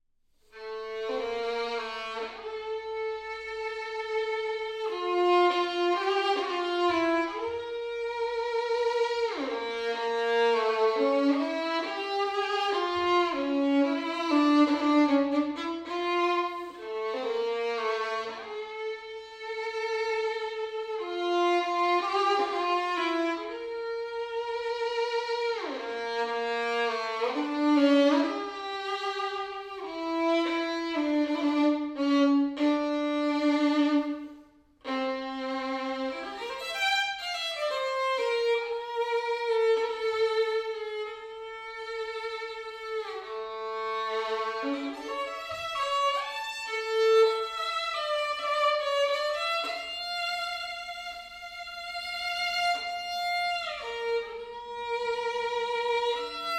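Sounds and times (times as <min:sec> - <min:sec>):
violin solo: 0:00.4 - 0:56.5.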